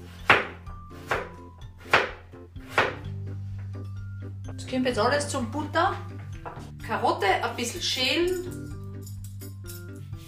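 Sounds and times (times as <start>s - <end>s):
knife chopping a peeled parsnip on a board: 0.0s - 3.1s
speech: 4.7s - 6.1s, 6.9s - 8.6s.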